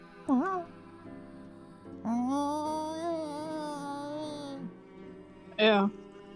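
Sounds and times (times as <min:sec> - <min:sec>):
human voice imitating cat meows: 0:02.1 - 0:04.7.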